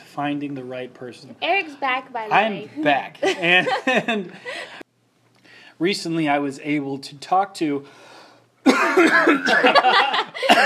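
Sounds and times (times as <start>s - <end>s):
speech: 0.2s - 4.8s, 5.8s - 8.1s, 9.0s - 10.6s
laughter: 3.2s - 4.8s, 8.7s - 10.6s
loud burst of rough voiced coughing: 8.7s - 9.8s, 10.4s - 10.6s.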